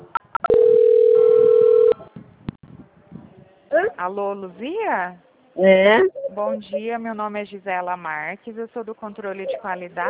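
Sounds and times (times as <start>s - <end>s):
telephone beeps and tone during a call transfer: 0.4s - 2.0s
speech: 4.0s - 10.0s.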